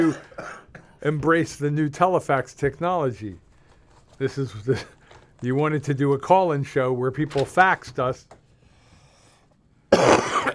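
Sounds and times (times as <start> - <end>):
wet phlegmy cough from a sick person into microphone: 0.0 - 1.0, 9.9 - 10.5
speech: 0.0 - 3.4, 4.2 - 8.4, 9.9 - 10.5.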